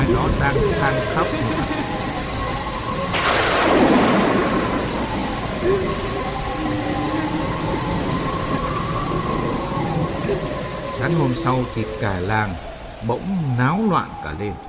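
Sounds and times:
loud rolling thunderclap in a late-night thunderstorm: 0.0 - 11.0
heavy pouring rain in a late-night thunderstorm: 0.0 - 14.6
wind in a late-night thunderstorm: 0.0 - 14.6
speech: 0.2 - 1.8, 11.0 - 14.6.

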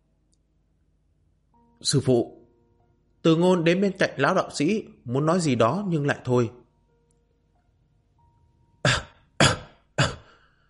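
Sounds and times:
speech: 1.8 - 2.4, 3.2 - 6.6
weak old Taoist master dry coughing on waking: 8.8 - 10.5.

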